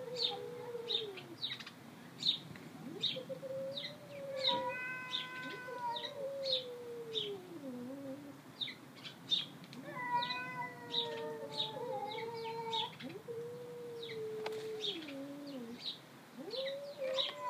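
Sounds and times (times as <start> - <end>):
light background hiss: 0.0 - 17.4
cat giving long tonal meows: 3.9 - 7.8, 9.8 - 13.2, 16.4 - 17.4.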